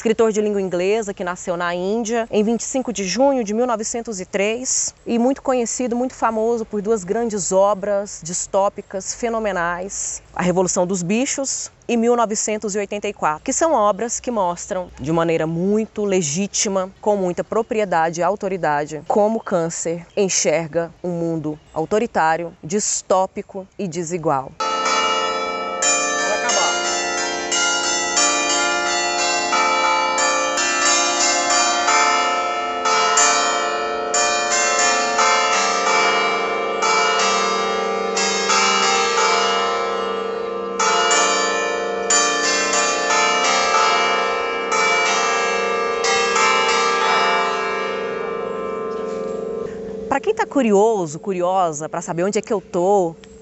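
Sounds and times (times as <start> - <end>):
speech: 0.0 - 24.7, 50.6 - 53.3
church bells ringing in a dense peal: 24.6 - 53.4.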